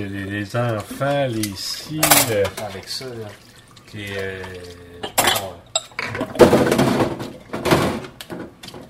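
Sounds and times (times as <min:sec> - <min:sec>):
speech: 0:00.0 - 0:07.0
dishes and cutlery clinking while washing up: 0:01.4 - 0:02.8, 0:05.0 - 0:08.0.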